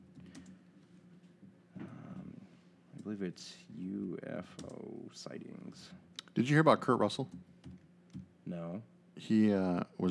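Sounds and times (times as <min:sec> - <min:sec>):
typing on a computer keyboard: 0:00.2 - 0:00.6
speech: 0:03.1 - 0:07.5, 0:08.5 - 0:10.0.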